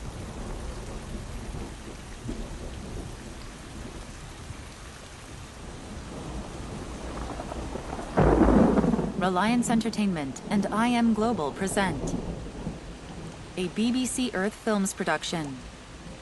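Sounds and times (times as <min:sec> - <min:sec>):
heavy rain falling on leaves and water: 0:00.0 - 0:16.1
speech: 0:09.2 - 0:12.3, 0:13.6 - 0:15.7.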